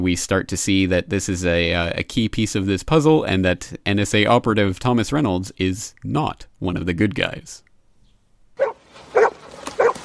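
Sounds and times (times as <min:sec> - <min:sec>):
speech: 0:00.0 - 0:07.7
dog barking: 0:08.6 - 0:10.0.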